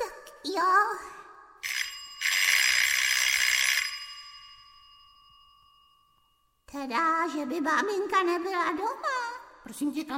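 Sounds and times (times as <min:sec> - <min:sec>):
doorbell ringing: 0:01.6 - 0:06.6
speech: 0:06.8 - 0:10.1.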